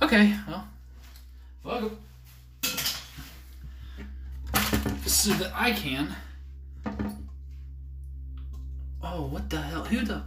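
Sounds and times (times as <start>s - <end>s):
speech: 0.1s - 0.8s, 1.6s - 2.1s, 5.2s - 7.1s, 9.1s - 10.2s
old ceramic toilet lid breaking: 4.5s - 5.5s.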